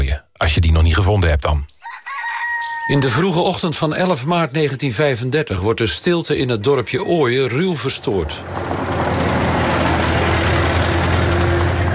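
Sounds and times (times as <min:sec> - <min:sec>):
speech: 0:00.4 - 0:01.8, 0:02.9 - 0:08.8
car engine rumbling as a car drives up and stops on a cold early morning: 0:06.3 - 0:11.9.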